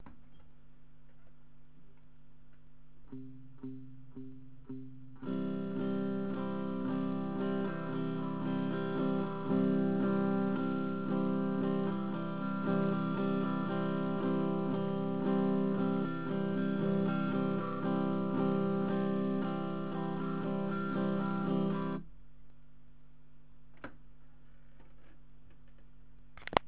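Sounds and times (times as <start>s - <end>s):
strumming: 3.1s - 22.0s.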